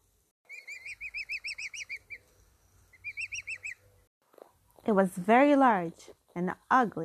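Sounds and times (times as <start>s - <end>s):
newly hatched duckling peeping: 0.5s - 4.1s
speech: 4.9s - 7.0s.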